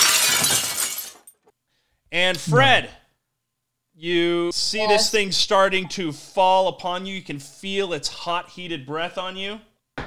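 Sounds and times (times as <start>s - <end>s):
glass pieces tinkling as they settle: 0.0s - 1.5s
glass shattering: 0.0s - 1.5s
speech: 2.2s - 3.0s, 4.0s - 9.7s.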